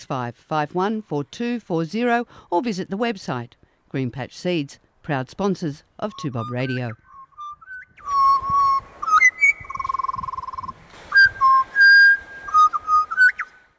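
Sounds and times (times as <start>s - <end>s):
speech: 0.1s - 7.0s
person whistling imitation of magpie call: 6.1s - 13.5s.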